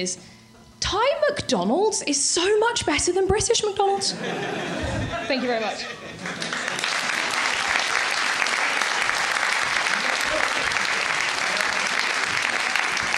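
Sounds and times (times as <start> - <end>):
speech: 0.0 - 6.6
laughter: 4.0 - 8.0, 9.7 - 13.1
applause from a sizable audience: 6.2 - 13.1.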